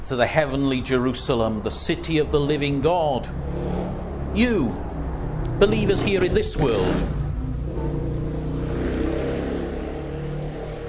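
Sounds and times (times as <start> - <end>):
speech: 0.1 - 3.8, 4.4 - 4.9, 5.6 - 7.2
motorbike engine revving outside: 3.1 - 10.8.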